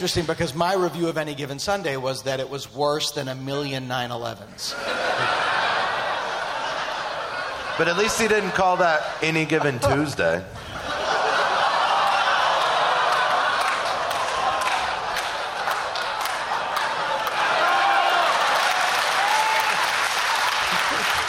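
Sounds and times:
speech: 0.0 - 5.6, 7.8 - 10.8
scattered laughter: 4.7 - 17.2, 20.4 - 21.2
applause from a large audience: 10.9 - 21.2.

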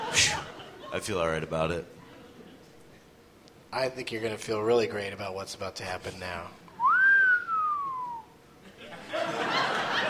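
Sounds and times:
crowd laughter: 0.0 - 1.2, 2.0 - 2.8, 8.6 - 10.0
speech: 0.9 - 2.0, 3.7 - 6.6
wolf whistle: 6.8 - 8.3.

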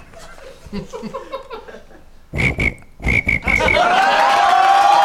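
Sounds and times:
laughter: 0.2 - 2.1, 3.4 - 4.9
person imitating a cricket with their voice: 2.4 - 3.8.

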